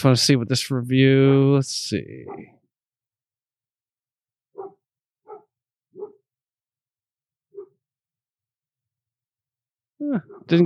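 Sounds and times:
speech: 0.0s - 2.6s, 10.0s - 10.6s
dogs barking: 2.2s - 2.6s, 4.5s - 6.3s, 7.5s - 7.8s, 10.2s - 10.6s.

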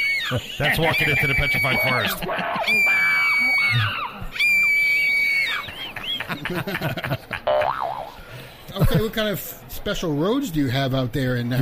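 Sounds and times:
crowd screaming sound effect: 0.0s - 6.8s
laughter: 0.2s - 4.3s, 5.4s - 9.3s
speech: 0.3s - 4.6s, 6.3s - 11.6s
long springy boing-like tones: 7.5s - 8.2s.

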